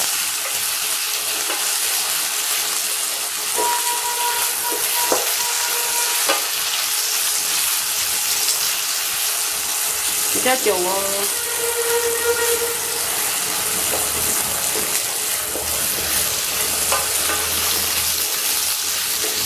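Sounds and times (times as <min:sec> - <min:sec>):
dried tofu sizzling in a hot pan: 0:00.0 - 0:19.4
metallic scrapes and clinks of a utensil stirring: 0:03.6 - 0:06.6, 0:10.4 - 0:17.9
speech: 0:10.5 - 0:12.9.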